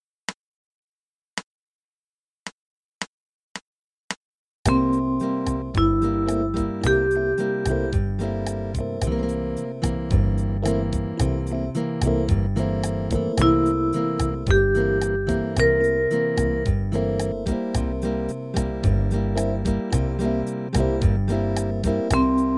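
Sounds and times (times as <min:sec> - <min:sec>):
dominant seventh arpeggio from the root: 0:04.7 - 0:22.5.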